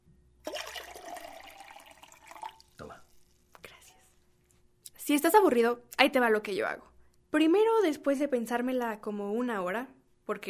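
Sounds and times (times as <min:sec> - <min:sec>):
water pouring into a glass: 0:00.4 - 0:03.5
speech: 0:05.1 - 0:10.4.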